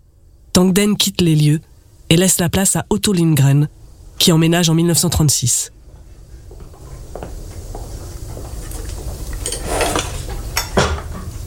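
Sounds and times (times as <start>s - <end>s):
low steady hum: 0.0s - 11.4s
speech: 0.6s - 5.8s
dinner table cutlery and dishes clinking: 8.6s - 11.1s
silverware scraping and tapping against plates: 9.4s - 11.0s.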